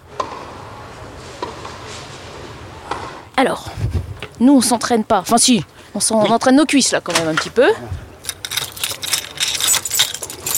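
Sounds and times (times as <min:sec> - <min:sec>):
speech: 0:03.4 - 0:08.1
bunch of keys jingling: 0:08.2 - 0:10.5.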